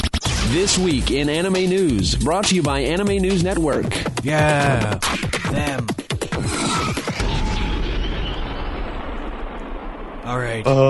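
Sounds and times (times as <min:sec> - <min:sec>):
speech: 0:00.5 - 0:06.5, 0:10.3 - 0:10.8
loud explosion with crackling onset and deep rumble: 0:07.2 - 0:10.8.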